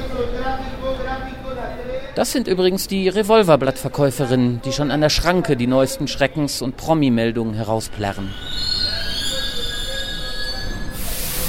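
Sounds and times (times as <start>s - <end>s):
speech: 0.4s - 8.7s
underground metro train squealing on rubber tyres: 7.2s - 11.4s.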